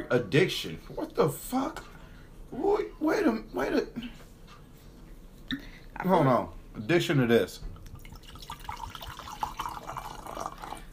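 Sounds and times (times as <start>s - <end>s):
speech: 0.1s - 1.9s, 2.5s - 4.2s, 5.5s - 7.7s
liquid pouring into a glass: 7.8s - 10.9s.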